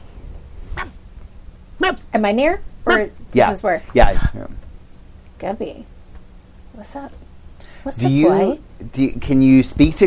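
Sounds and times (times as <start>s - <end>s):
puppy yipping: 0.8s - 1.0s
speech: 1.8s - 4.6s, 5.4s - 5.9s, 6.8s - 7.2s, 7.8s - 10.0s.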